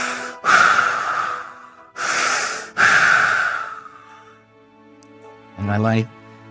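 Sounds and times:
voice imitating a medical ventilator breathing: 0.0 - 3.9
speech: 5.7 - 6.2.

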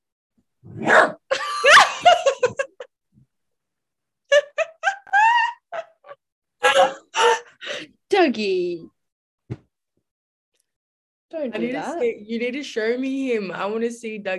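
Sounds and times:
dog barking and yelping: 0.7 - 2.1
laughter: 1.3 - 2.9, 4.3 - 7.3
speech: 8.2 - 8.9, 11.4 - 14.3.

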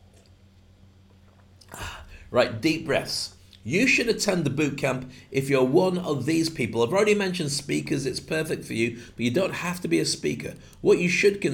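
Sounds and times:
person taking a quick sip of a drink: 1.5 - 2.3
speech: 2.3 - 11.5.

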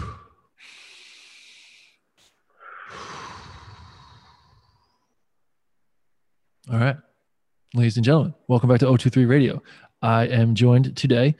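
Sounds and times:
deep breath: 0.0 - 5.3, 9.6 - 10.0
speech: 6.7 - 7.1, 7.7 - 11.3.

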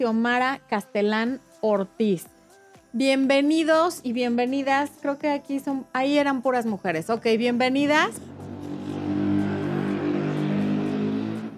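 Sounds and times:
speech: 0.0 - 8.3
motorcycle passing by with a droning engine: 7.5 - 11.5.

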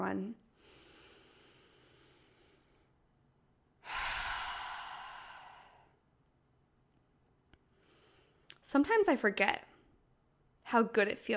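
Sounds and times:
speech: 0.1 - 0.4, 8.7 - 9.7, 10.7 - 11.3
deep breathing: 0.5 - 3.0, 3.8 - 6.0, 7.7 - 8.5.

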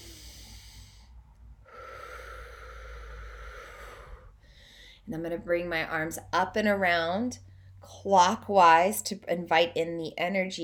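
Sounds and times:
deep breath drawn at the start of a guided prayer: 0.0 - 5.0
speech: 5.1 - 10.6.

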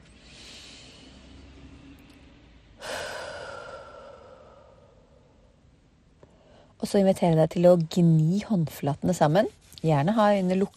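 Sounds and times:
slow calm breathing: 0.0 - 5.6, 6.2 - 6.8
speech: 6.9 - 10.7.

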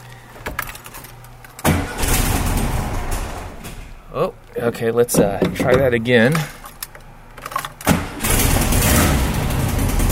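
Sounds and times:
1974 Volkswagen Beetle engine cranking and starting in a garage: 1.6 - 4.2, 5.2 - 10.0
speech: 4.2 - 6.6.

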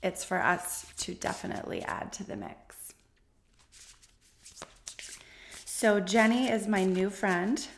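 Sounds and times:
speech: 0.0 - 2.8, 5.8 - 7.7
deck of cards being shuffled: 0.7 - 2.2, 3.5 - 7.7.

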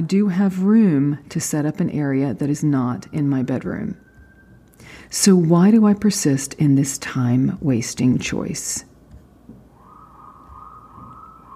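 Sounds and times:
speech: 0.0 - 4.0, 4.8 - 8.9
vehicle siren wailing as the vehicle goes by: 2.6 - 4.7, 9.7 - 11.5.

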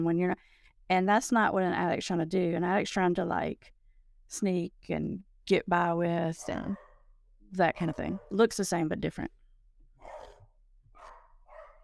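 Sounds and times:
speech: 0.0 - 6.8, 7.5 - 9.4
dog barking: 6.4 - 7.0, 10.0 - 11.8.

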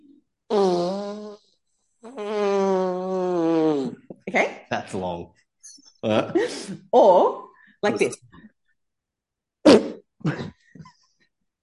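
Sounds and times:
voice imitating a long fart: 0.5 - 4.1, 9.6 - 10.5
speech: 4.4 - 8.2.

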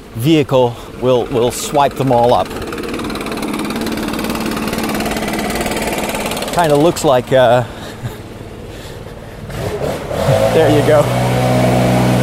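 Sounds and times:
speech: 0.2 - 2.7, 6.6 - 7.8, 10.3 - 11.6
backpack leaf blower blowing fallen leaves outdoors: 0.7 - 12.2.

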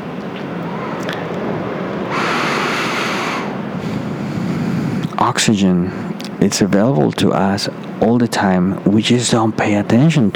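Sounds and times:
ocean waves crashing on the shore: 0.0 - 5.0
speech: 5.3 - 10.3.

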